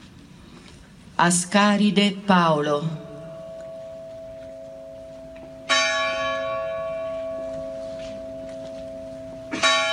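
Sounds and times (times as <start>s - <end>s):
speech: 1.2s - 3.0s
church bell tolling for earthquake victims: 2.8s - 9.9s.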